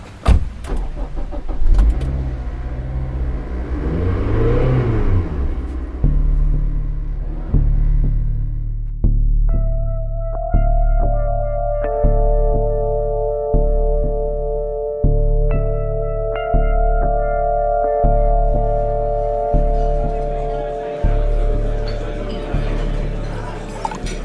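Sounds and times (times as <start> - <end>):
car pulling away through gear changes: 0.0 - 8.9, 17.4 - 24.2
car engine revving: 0.0 - 9.2, 15.1 - 24.2
car engine starting: 0.0 - 24.2.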